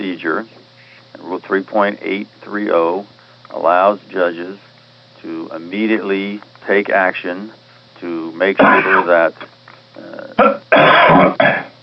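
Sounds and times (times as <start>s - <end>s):
speech: 0.1s - 9.6s, 10.4s - 11.7s
person coughing and clearing their throat on an unmuted phone line: 8.6s - 9.2s, 10.4s - 11.8s.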